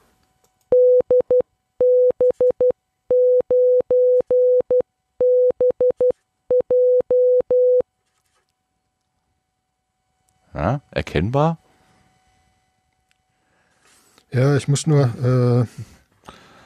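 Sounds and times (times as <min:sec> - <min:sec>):
machine-generated Morse code tone keying a call sign: 0:00.8 - 0:07.8
speech: 0:11.0 - 0:11.6, 0:14.4 - 0:16.0.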